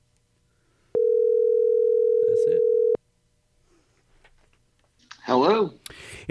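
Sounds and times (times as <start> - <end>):
telephone ringback tone: 1.0 - 3.0
speech: 5.4 - 6.2.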